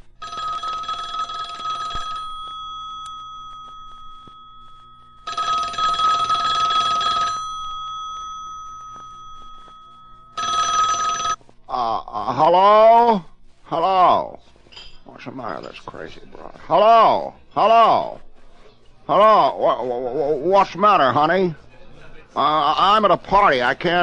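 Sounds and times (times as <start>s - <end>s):
telephone bell ringing: 0.1s - 11.5s
speech: 12.4s - 13.3s, 15.3s - 18.2s, 19.1s - 21.6s, 22.4s - 24.0s.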